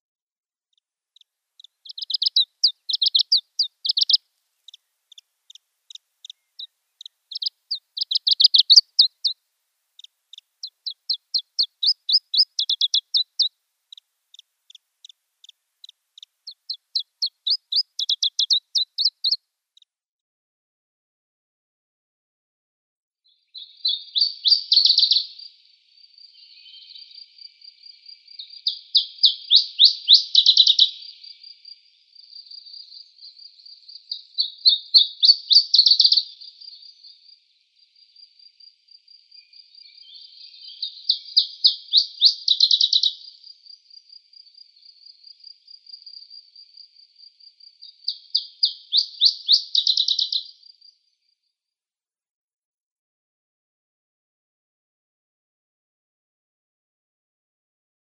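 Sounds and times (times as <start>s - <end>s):
Iberian Chiffchaff song: 1.2s - 9.4s, 10.0s - 19.4s, 23.3s - 47.0s, 47.7s - 50.9s.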